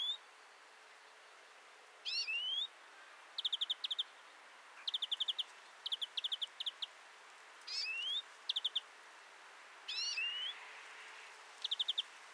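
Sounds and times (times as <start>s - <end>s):
European greenfinch Chloris chloris calls of dry ticking trills and nasal notes: 0.0s - 0.3s, 2.0s - 4.2s, 4.8s - 7.0s, 7.7s - 8.9s, 9.9s - 10.6s, 11.6s - 12.1s.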